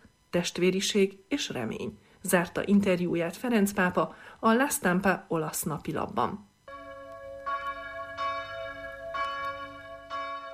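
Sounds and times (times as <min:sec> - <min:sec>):
speech: 0:00.3 - 0:06.5
church bells ringing: 0:06.7 - 0:10.5.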